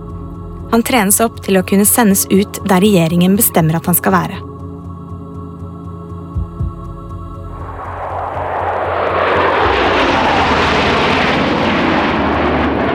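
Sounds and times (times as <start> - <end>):
speech: 0.7 - 4.5
Norwegian plane carrying soldiers taking off with jet engine roar: 7.6 - 12.9.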